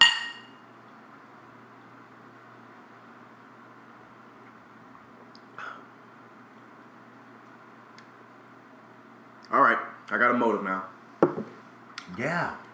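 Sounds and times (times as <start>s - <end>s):
glasses clinking in a toast: 0.0s - 0.6s
low hum: 0.0s - 12.7s
speech: 9.5s - 10.9s, 12.2s - 12.6s
soft knock: 11.2s - 11.6s.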